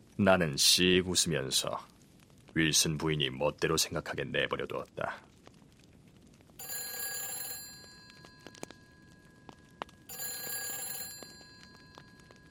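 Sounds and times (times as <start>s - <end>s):
speech: 0.2s - 1.9s, 2.6s - 5.3s
telephone bell ringing downstairs with a bright metallic jangle: 6.6s - 12.4s.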